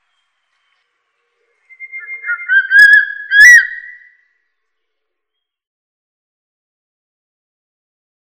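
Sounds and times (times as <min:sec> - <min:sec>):
Crested serpent eagle giving a quavering whistled call: 0:01.7 - 0:04.2.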